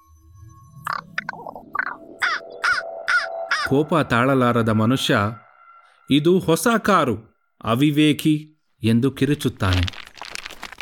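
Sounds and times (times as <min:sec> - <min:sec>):
crow cawing from a bare tree branch: 0:01.8 - 0:03.7
speech: 0:03.7 - 0:05.4, 0:06.1 - 0:10.0.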